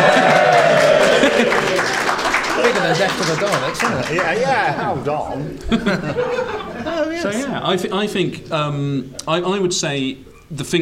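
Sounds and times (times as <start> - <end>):
crowd applause: 0.0 - 5.0
laughter: 0.0 - 7.6
speech: 3.0 - 10.7.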